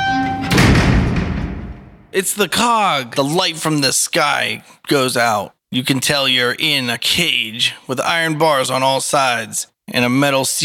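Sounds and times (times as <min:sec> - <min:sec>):
heavy metallic thud: 0:00.0 - 0:02.2
speech: 0:02.1 - 0:10.6.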